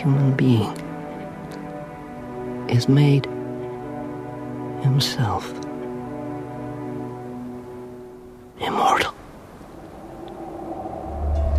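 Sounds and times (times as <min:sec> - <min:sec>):
speech: 0:00.0 - 0:00.8, 0:02.7 - 0:03.4, 0:04.8 - 0:05.6
approaching train rumbling: 0:10.2 - 0:11.5.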